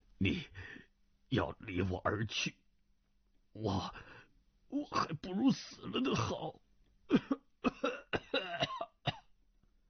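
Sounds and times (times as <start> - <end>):
speech: 0.2 - 2.6, 3.6 - 8.0
person coughing harshly: 7.1 - 9.4.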